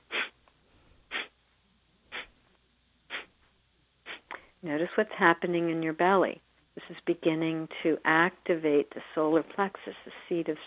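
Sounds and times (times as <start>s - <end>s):
sharp exhalations through the nostrils during a breathing exercise: 0.0s - 1.4s, 2.1s - 2.4s, 3.1s - 3.4s, 4.0s - 4.6s
speech: 4.6s - 10.6s.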